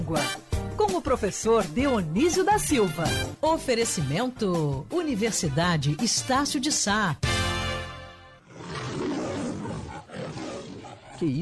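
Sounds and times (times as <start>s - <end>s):
speech: 0.1s - 7.4s, 11.2s - 11.4s
lion roaring: 8.4s - 11.4s.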